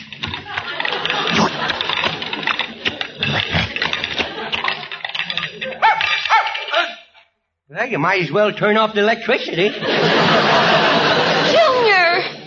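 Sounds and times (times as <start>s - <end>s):
laughter: 0.2s - 6.9s, 9.4s - 12.4s
puppy yapping and barking: 5.8s - 6.8s
speech: 7.9s - 10.8s.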